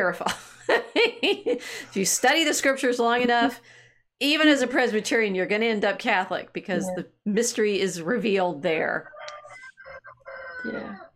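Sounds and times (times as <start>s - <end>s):
speech: 0.0s - 9.1s, 10.6s - 11.1s
rooster crowing: 10.2s - 11.0s.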